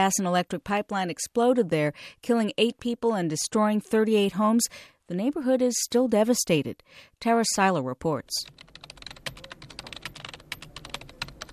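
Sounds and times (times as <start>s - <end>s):
speech: 0.0s - 8.7s
rapid typing on a computer keyboard: 8.4s - 11.5s.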